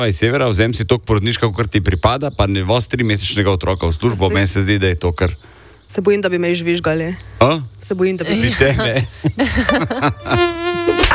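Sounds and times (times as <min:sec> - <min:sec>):
speech: 0:00.0 - 0:11.1
laughter: 0:08.4 - 0:11.1
mosquito buzzing: 0:10.2 - 0:11.1.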